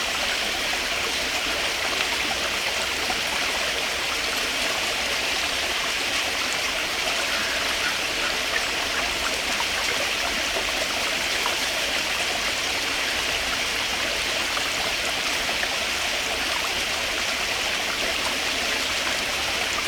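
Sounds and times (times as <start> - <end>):
creek water burbling and trickling: 0.0 - 19.8.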